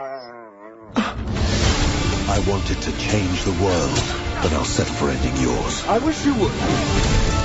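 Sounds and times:
dog whimpering: 0:00.0 - 0:01.0
speech: 0:02.3 - 0:07.3.

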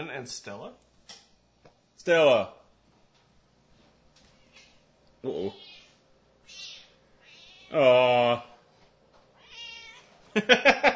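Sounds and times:
speech: 0:00.0 - 0:01.2, 0:02.0 - 0:02.6, 0:05.2 - 0:05.7, 0:07.7 - 0:08.5, 0:10.4 - 0:10.9
female cat clipped chirpy calls: 0:05.5 - 0:07.8, 0:09.4 - 0:10.1
female cat meowing: 0:06.5 - 0:07.8, 0:09.4 - 0:10.1.

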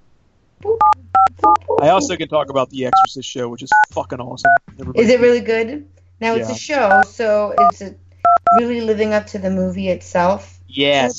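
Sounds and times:
phone keypad dialing tones: 0:00.8 - 0:01.9, 0:06.9 - 0:07.7, 0:08.3 - 0:08.6
laughter: 0:01.7 - 0:05.2, 0:06.3 - 0:06.6
speech: 0:01.8 - 0:11.1.

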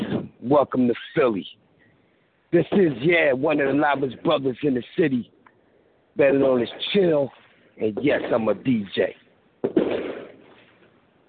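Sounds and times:
speech: 0:00.5 - 0:01.6, 0:02.5 - 0:05.4, 0:06.2 - 0:10.0
fireworks going off outside: 0:08.0 - 0:08.9, 0:09.6 - 0:10.9.

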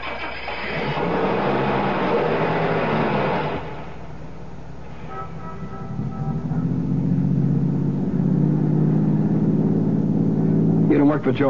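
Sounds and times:
car engine starting and pulling away: 0:00.0 - 0:11.4
loud broadband noise: 0:00.0 - 0:11.4
speech: 0:11.2 - 0:11.4.

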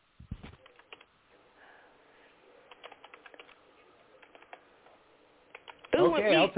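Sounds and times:
keystrokes clattering on a computer keyboard: 0:00.6 - 0:01.1, 0:02.7 - 0:03.6, 0:04.2 - 0:04.6, 0:05.5 - 0:06.0
speech: 0:06.0 - 0:06.5.

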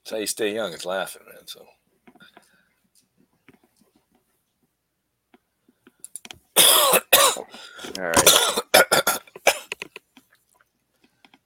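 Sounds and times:
speech: 0:00.1 - 0:01.8, 0:07.9 - 0:08.6
sick man with earaches coughing: 0:06.6 - 0:07.6, 0:08.2 - 0:09.7.

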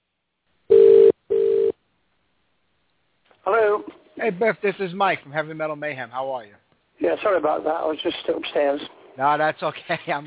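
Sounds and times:
telephone line tones while a call is redialed: 0:00.7 - 0:01.7
speech: 0:04.2 - 0:10.2.

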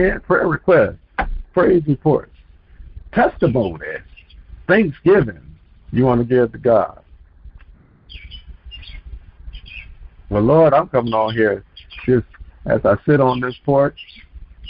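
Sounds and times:
speech: 0:00.0 - 0:01.0, 0:01.6 - 0:02.3, 0:03.1 - 0:04.1, 0:04.7 - 0:07.0, 0:10.3 - 0:14.6
birds chirping outdoors: 0:00.0 - 0:14.6
low rumbling background of wind or traffic: 0:00.0 - 0:14.6
harsh bird squawk with a chirpy edge: 0:03.5 - 0:04.4, 0:08.1 - 0:10.0, 0:11.0 - 0:12.1, 0:13.2 - 0:14.6.

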